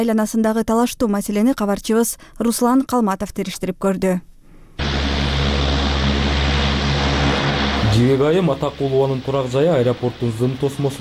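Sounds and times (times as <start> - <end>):
speech: 0.0 - 4.9, 8.0 - 10.9
airplane landing by an airport: 4.8 - 10.9
low droning hum: 4.8 - 10.9.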